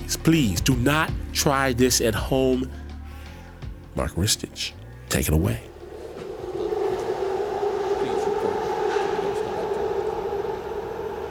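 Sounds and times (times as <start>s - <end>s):
speech: 0.2s - 2.8s, 4.0s - 5.7s
faint subway train squeals and rattles: 4.4s - 11.2s
subway train motor whine: 4.6s - 11.2s
New York City subway train rumbling between Brooklyn and Queens: 5.4s - 11.2s.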